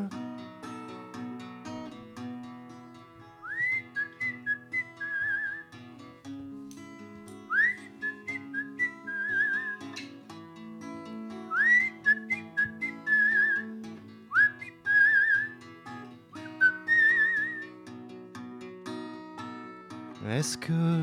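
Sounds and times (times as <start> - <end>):
person whistling a melody: 3.4 - 5.6, 7.5 - 10.0, 11.5 - 13.7, 14.3 - 15.6, 16.4 - 17.7
speech: 20.3 - 21.0.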